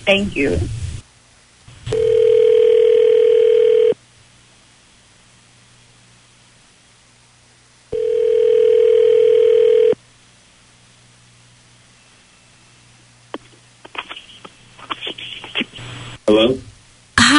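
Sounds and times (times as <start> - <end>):
speech: 0.0 - 0.8
outgoing phone call ringback tones: 1.9 - 4.0, 8.0 - 10.0.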